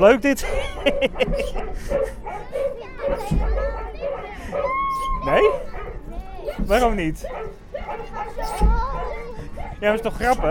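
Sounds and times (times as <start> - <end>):
speech: 0.0 - 3.5, 4.5 - 5.7, 6.6 - 7.6, 9.8 - 10.5
laughter: 0.4 - 2.2
excited children's voices on a jumping-dogs amusement park ride: 2.1 - 10.5.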